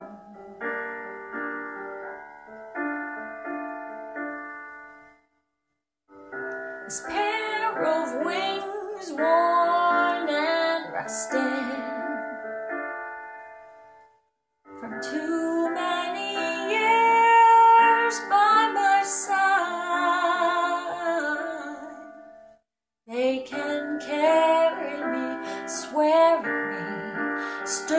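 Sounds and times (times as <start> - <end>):
person singing an English song: 6.9 - 12.4, 14.8 - 22.1, 23.1 - 27.9.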